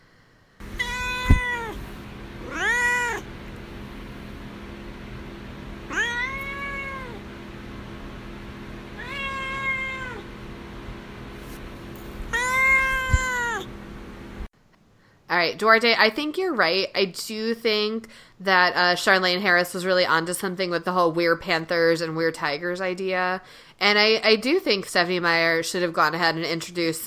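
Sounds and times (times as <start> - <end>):
pet cat meowing: 0.7 - 1.8, 2.4 - 3.3, 5.9 - 7.2, 9.0 - 10.3, 12.3 - 13.7
speech: 15.4 - 27.0.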